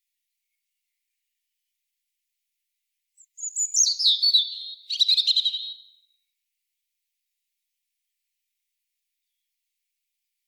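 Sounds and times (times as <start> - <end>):
European robin song phrase, Erithacus rubecula: 3.2 - 6.1.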